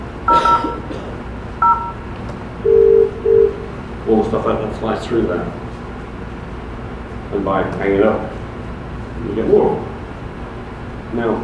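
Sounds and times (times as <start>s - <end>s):
telephone keypad tones while placing a phone call: 0.3s - 0.9s, 1.6s - 2.0s, 2.6s - 3.6s
speech: 4.1s - 5.6s, 7.3s - 8.4s, 9.2s - 9.9s, 11.1s - 11.4s.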